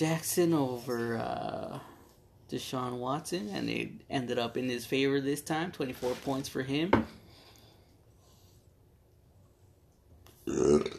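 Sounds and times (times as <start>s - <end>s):
speech: 0.0s - 1.9s, 2.5s - 7.2s, 10.5s - 10.9s
short loud throaty burp: 10.4s - 10.9s.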